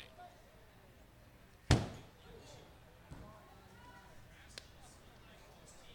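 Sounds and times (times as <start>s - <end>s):
faint crowd murmur at a ballpark: 0.0s - 5.9s
foul pop-up baseball thumping on a press box canopy at a ballpark: 1.7s - 2.1s.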